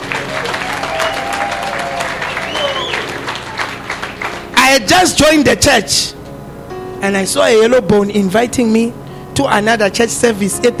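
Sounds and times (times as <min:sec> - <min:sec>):
scattered cheers: 0:00.0 - 0:03.7
audience clapping: 0:00.0 - 0:04.6
speech: 0:04.8 - 0:06.2, 0:07.0 - 0:10.7.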